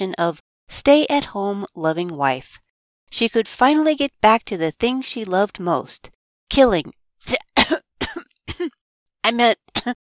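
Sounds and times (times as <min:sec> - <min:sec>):
speech: 0:00.0 - 0:07.8, 0:08.6 - 0:10.0
person coughing: 0:07.3 - 0:08.8, 0:09.7 - 0:10.0.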